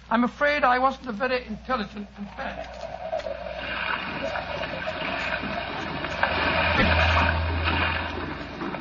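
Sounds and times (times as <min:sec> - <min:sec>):
speech: 0:00.1 - 0:02.9
rough sea water washing around a small fishing boat: 0:01.4 - 0:08.7
low droning rumble: 0:04.2 - 0:08.7.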